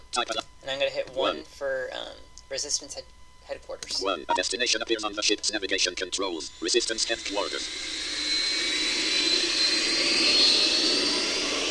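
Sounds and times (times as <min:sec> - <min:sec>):
speech: 0:00.1 - 0:08.1
video game spaceship engine roar with high whine while flying on autopilot: 0:06.8 - 0:11.6.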